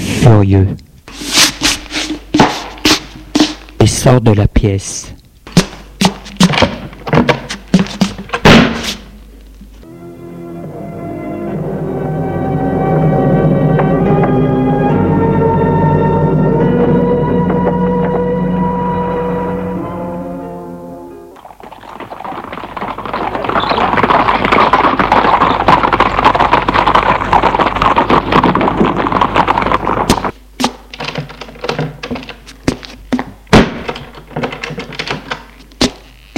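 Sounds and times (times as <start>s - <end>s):
speech: 0.3s - 0.9s, 4.0s - 5.2s
horse hooves galloping: 1.3s - 3.9s, 5.4s - 9.3s, 21.4s - 36.3s
sustained droning tone: 9.9s - 21.2s.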